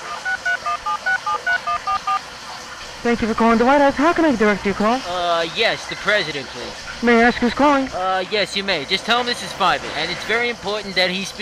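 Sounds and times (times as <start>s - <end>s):
cell phone speed dial keypad tones: 0.0s - 2.2s
speech: 3.0s - 11.4s.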